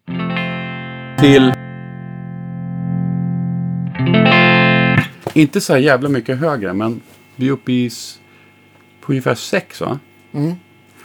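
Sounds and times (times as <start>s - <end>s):
distorted electric guitar through an overdriven Fender amplifier: 0.0s - 5.3s
speech: 1.2s - 1.6s, 5.4s - 8.2s, 9.0s - 10.6s.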